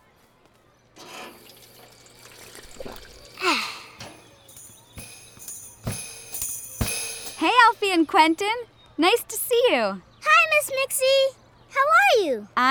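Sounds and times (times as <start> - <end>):
water fountain running with a steady hiss: 1.0 - 3.4
speech: 7.4 - 12.6.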